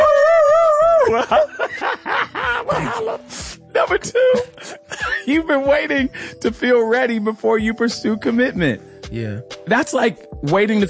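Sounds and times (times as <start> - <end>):
dog howling and yelping: 0.0 - 1.2
laughter: 1.0 - 3.4
speech: 1.1 - 1.6, 3.0 - 10.8.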